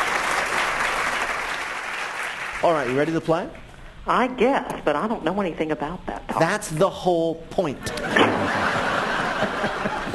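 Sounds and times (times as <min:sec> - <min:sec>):
audience applause: 0:00.0 - 0:03.0
speech: 0:02.6 - 0:08.7, 0:09.4 - 0:10.1
laughter: 0:07.8 - 0:10.1.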